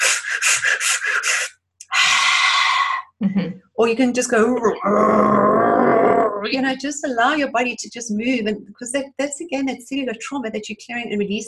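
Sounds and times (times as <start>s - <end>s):
long loud sustained rushing exhale: 0.0s - 3.0s
quick forceful breathy puffs to release tension: 0.0s - 3.0s
speech: 0.5s - 1.6s, 3.3s - 11.4s.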